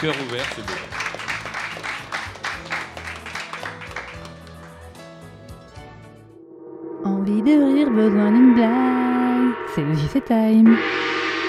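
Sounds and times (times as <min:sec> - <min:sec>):
speech: 0:00.0 - 0:01.0, 0:07.3 - 0:09.1, 0:09.8 - 0:11.0
audience applause: 0:00.0 - 0:05.6.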